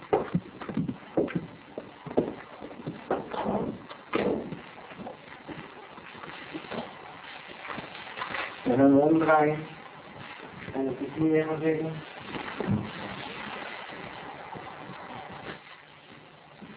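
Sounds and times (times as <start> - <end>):
horse hooves walking on a hard stable floor: 0.1 - 5.7
speech: 8.8 - 9.7, 10.8 - 12.1.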